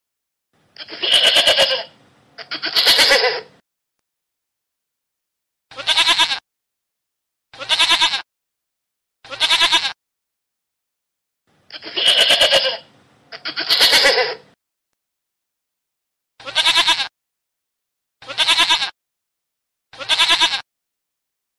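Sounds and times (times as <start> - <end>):
goat bleating: 0.8 - 3.6, 5.7 - 6.4, 7.6 - 8.3, 9.2 - 10.0, 11.7 - 14.5, 16.4 - 17.1, 18.2 - 19.0, 19.9 - 20.7.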